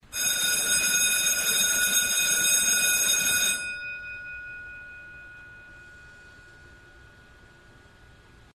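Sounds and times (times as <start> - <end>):
school bell ringtone: 0.0 - 8.1.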